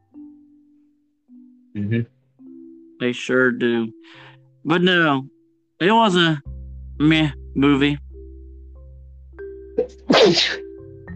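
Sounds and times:
speech: 1.8 - 2.2, 3.0 - 8.0, 10.2 - 10.6
single loud sneeze: 9.8 - 10.7.

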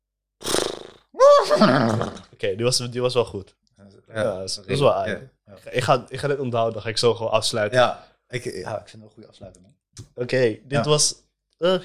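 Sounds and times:
person imitating a horse neighing: 0.6 - 2.3
speech: 1.2 - 11.8.

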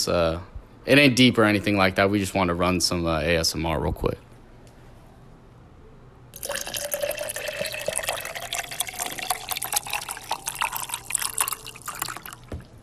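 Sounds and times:
speech: 0.0 - 4.3
water running from a faucet: 6.4 - 12.6.

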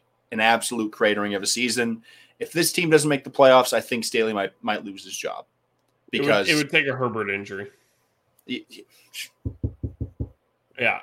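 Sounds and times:
speech: 0.3 - 7.8, 8.5 - 9.6, 10.8 - 11.0
knocking on wood: 9.4 - 10.4.

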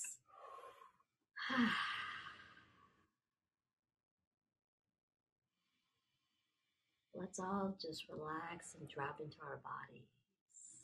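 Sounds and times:
person taking a big deep breath with a sighing exhale: 0.2 - 2.8
speech: 1.5 - 2.0, 7.3 - 10.2.

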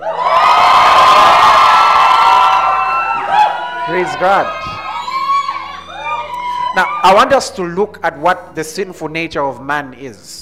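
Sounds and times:
church audience screaming and cheering: 0.0 - 7.5
speech: 4.0 - 4.8, 6.8 - 10.4.

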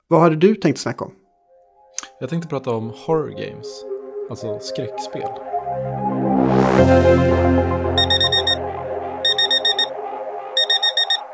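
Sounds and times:
speech: 0.1 - 1.2, 2.0 - 7.8
droning musical background: 1.4 - 11.3
alarm clock beeping: 7.9 - 10.0, 10.6 - 11.3.

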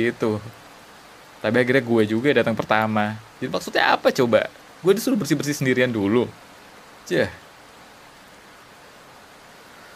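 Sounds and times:
speech: 0.0 - 0.6, 1.4 - 6.4, 7.1 - 7.4
heavy rain: 0.0 - 9.9.

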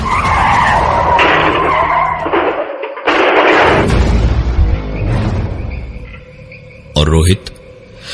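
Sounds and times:
car windshield shattering: 0.0 - 4.6
car crashing into a tree: 0.0 - 5.8
car tires screeching in a skid: 0.0 - 6.7.

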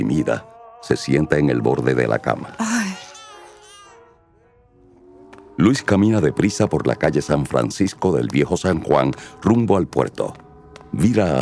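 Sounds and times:
speech: 0.0 - 2.8, 5.6 - 11.3
baby girl crying and wailing: 2.6 - 4.0.

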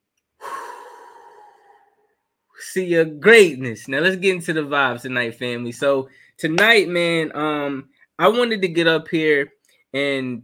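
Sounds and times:
deep exhale during a guided breathing exercise: 0.4 - 2.1
speech: 2.6 - 10.4.

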